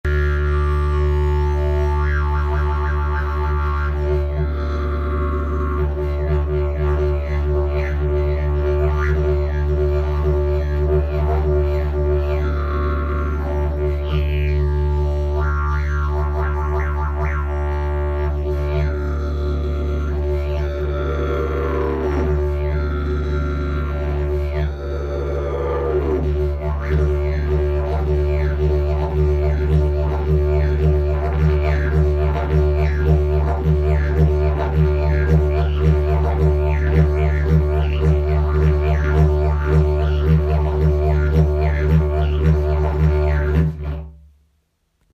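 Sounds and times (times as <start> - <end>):
32 mm didgeridoo: 0.0 - 44.2.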